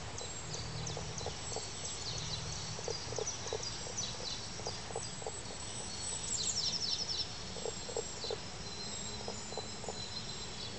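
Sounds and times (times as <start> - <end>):
steady background hiss: 0.0 - 10.7
Common spadefoot Pelobates fuscus calling in soft low clucks: 0.8 - 5.8, 7.5 - 8.4.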